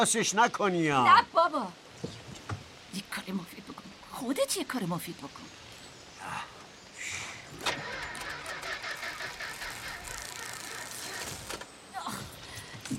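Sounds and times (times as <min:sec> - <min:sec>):
speech: 0:00.0 - 0:02.2, 0:04.2 - 0:05.6
car engine cranking, failing to start: 0:07.5 - 0:11.7.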